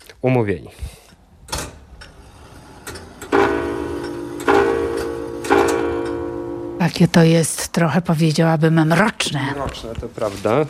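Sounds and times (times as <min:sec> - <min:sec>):
speech: 0:00.2 - 0:01.0, 0:06.9 - 0:10.6
mechanical clock ticking in a clockmaker's workshop: 0:03.2 - 0:06.8.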